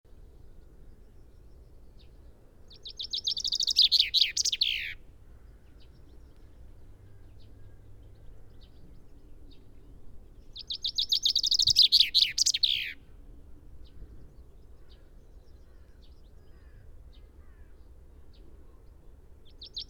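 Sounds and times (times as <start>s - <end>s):
common chaffinch Fringilla coelebs song: 0.1s - 13.2s, 18.4s - 19.8s
faint bird chirps: 0.9s - 9.8s, 10.4s - 13.0s, 13.9s - 19.8s.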